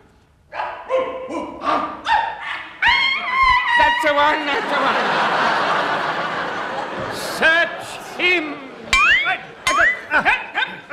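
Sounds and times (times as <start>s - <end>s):
long-haired sheepdogs barking one after another: 0.5s - 3.2s
laughter: 3.8s - 10.9s
speech: 4.2s - 5.5s.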